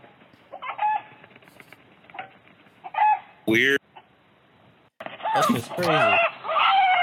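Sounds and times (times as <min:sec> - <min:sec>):
chicken squawking and clucking while attacked by a hawk: 0:00.5 - 0:01.2, 0:02.1 - 0:03.3, 0:05.2 - 0:07.0
speech: 0:03.5 - 0:03.8, 0:05.5 - 0:06.3.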